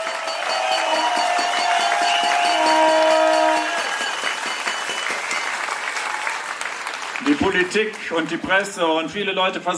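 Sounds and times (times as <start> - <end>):
crowd applause at outdoor protest: 0.0 - 8.8
whistles over applause at outdoor protest: 0.4 - 2.9, 3.8 - 5.8
speech: 7.4 - 9.7.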